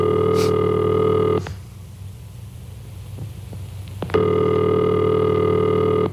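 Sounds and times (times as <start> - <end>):
telephone ringback tone with long buzzing rings: 0.0 - 1.4, 4.2 - 6.1.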